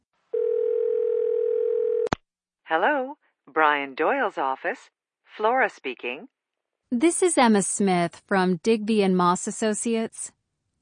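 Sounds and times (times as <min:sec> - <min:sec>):
telephone ringing tone on the line: 0:00.3 - 0:02.1
speech: 0:02.7 - 0:10.4.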